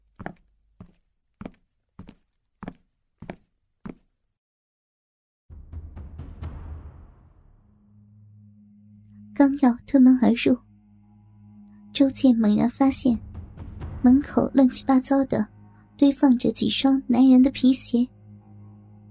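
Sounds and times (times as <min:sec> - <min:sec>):
tiptoeing footsteps climbing stairs to a bedroom door: 0:00.0 - 0:04.1
speech: 0:09.4 - 0:10.7, 0:12.0 - 0:13.2, 0:14.0 - 0:18.2.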